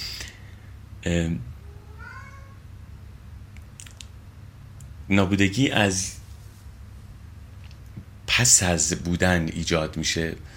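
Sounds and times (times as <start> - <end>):
speech: 1.0 - 1.5, 5.1 - 6.2, 8.4 - 10.5
cat meowing indoors: 1.6 - 2.6.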